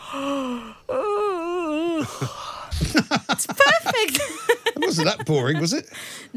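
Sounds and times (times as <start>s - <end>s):
person giving an exaggerated deliberate yawn: 0.0s - 3.2s
laughter: 2.0s - 5.9s
speech: 2.0s - 6.3s.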